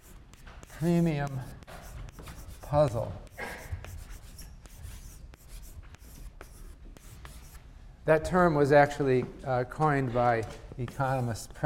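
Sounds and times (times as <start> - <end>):
scratchy writing strokes on a board during a finance lecture: 0.0 - 7.6, 10.4 - 11.6
speech: 0.8 - 1.6, 2.7 - 3.3, 8.0 - 11.6.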